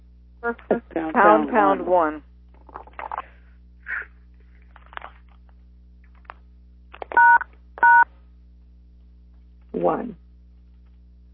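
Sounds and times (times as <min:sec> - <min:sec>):
people talking: 0:00.4 - 0:02.2, 0:09.8 - 0:10.2
telephone keypad tones pound then one pressed to mute a line: 0:07.2 - 0:08.0.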